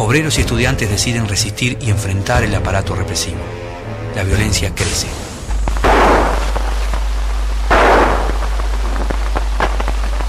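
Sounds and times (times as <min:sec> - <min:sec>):
speech: 0:00.1 - 0:03.6, 0:04.2 - 0:05.2
faint scattered crackle: 0:05.5 - 0:10.2
gunshots from a .45 pistol fired by a policeman during street unrest: 0:05.6 - 0:06.8, 0:07.7 - 0:10.2.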